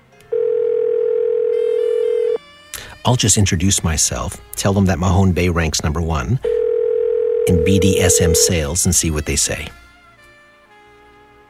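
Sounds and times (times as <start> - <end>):
telephone ringing tone on the line: 0.3 - 2.4, 6.4 - 8.7
speech: 3.1 - 6.6, 7.5 - 9.8.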